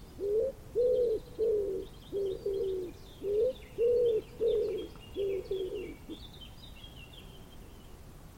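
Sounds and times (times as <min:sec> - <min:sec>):
small birds twittering quietly in the background: 0:00.0 - 0:08.3
common wood pigeon giving deep muffled coos: 0:00.2 - 0:06.2.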